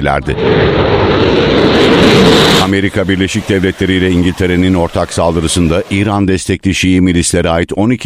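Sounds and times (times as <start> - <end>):
speech: 0.0 - 8.0
military jet aircraft engine roar during takeoff: 0.2 - 6.1.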